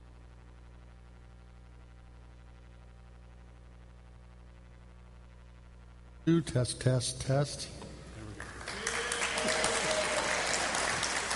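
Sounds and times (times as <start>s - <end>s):
speech: 6.3s - 7.8s
audience applause: 8.4s - 11.3s.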